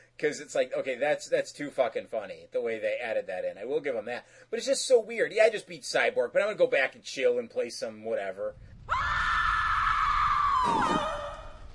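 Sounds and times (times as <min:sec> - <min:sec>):
speech: 0:00.2 - 0:09.2
high-pitched scream: 0:08.8 - 0:11.7.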